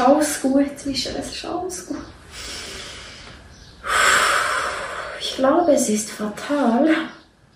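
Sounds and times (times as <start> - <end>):
speech: 0.0 - 2.6, 5.4 - 7.2
person taking a deep breath: 2.3 - 5.2.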